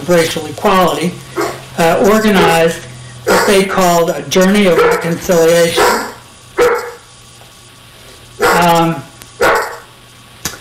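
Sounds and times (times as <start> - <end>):
speech: 0.0 - 6.1
low steady hum: 0.0 - 10.5
dogs barking: 1.3 - 7.1, 8.4 - 8.8, 9.4 - 9.9
drawn-out dog bark with a whining, yelping tone: 1.4 - 1.7, 3.2 - 4.0, 4.7 - 7.1, 8.4 - 8.8, 9.4 - 9.9.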